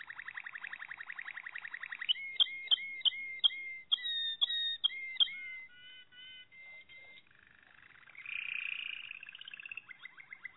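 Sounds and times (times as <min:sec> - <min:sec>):
Malinois canary song: 0:00.0 - 0:10.5.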